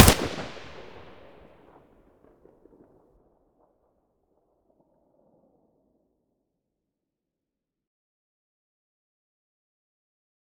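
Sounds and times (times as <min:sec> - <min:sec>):
AK74U muzzle gunshot: 0:00.0 - 0:01.4.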